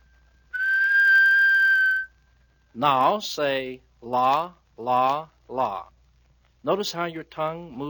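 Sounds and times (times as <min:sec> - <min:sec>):
steady high-pitched whistle note by mouth: 0:00.0 - 0:02.2
speech: 0:02.8 - 0:06.0, 0:06.6 - 0:07.8.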